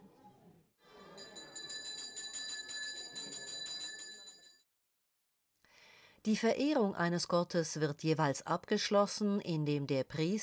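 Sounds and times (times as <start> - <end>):
small temple bells ringing during a Hindu worship ritual: 0.9 - 4.6
speech: 6.2 - 10.4.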